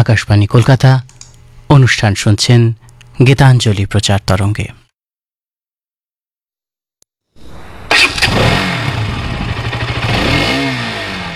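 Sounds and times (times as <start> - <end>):
speech: 0.0 - 1.1, 1.7 - 4.8
motorcycle engine starting and revving: 7.4 - 11.3.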